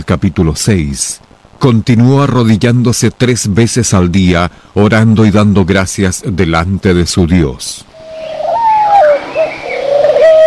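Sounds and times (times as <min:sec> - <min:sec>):
speech: 0:00.0 - 0:08.4
pigeons cooing: 0:07.9 - 0:10.4.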